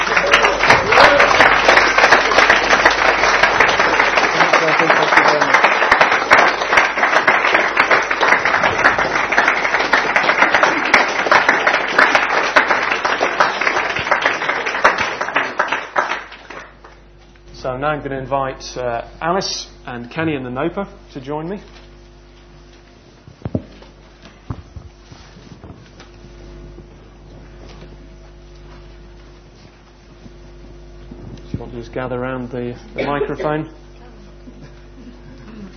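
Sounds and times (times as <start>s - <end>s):
large gathering applauding: 0.0s - 17.0s
speech: 17.8s - 21.7s, 32.0s - 33.8s.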